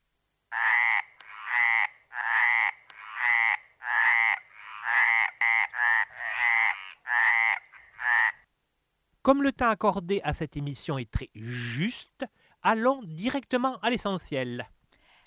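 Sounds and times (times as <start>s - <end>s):
frogs croaking in a rhythmic chorus: 0.5s - 8.5s
speech: 9.2s - 14.8s.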